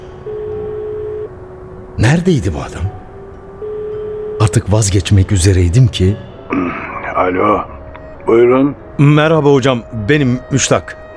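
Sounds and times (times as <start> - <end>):
telephone ringing tone down a mobile phone line: 0.2 - 1.4, 3.6 - 4.7
speech: 2.0 - 3.0, 4.5 - 11.0.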